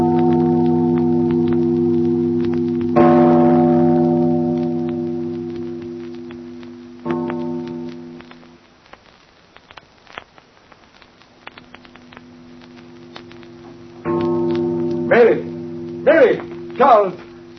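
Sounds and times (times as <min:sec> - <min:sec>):
deep tower bell tolling: 0:00.0 - 0:08.2, 0:14.1 - 0:17.5.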